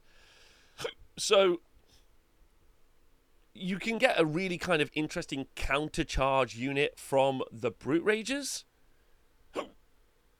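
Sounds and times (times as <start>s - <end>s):
hiccup: 0.8s - 1.0s, 9.5s - 9.8s
speech: 1.2s - 1.7s, 3.6s - 8.7s.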